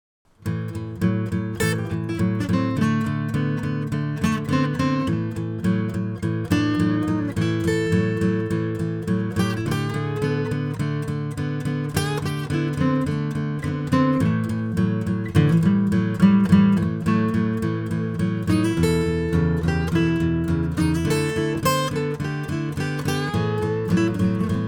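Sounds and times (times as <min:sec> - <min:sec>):
12 bar blues rhythm in A: 0:00.5 - 0:24.6
A pentatonic lead guitar: 0:00.5 - 0:24.6.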